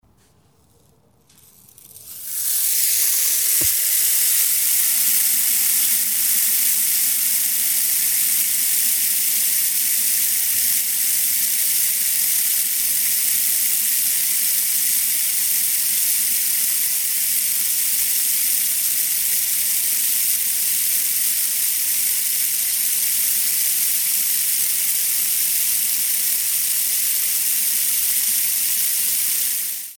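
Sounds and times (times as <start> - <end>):
rainstick: 1.3 - 29.9.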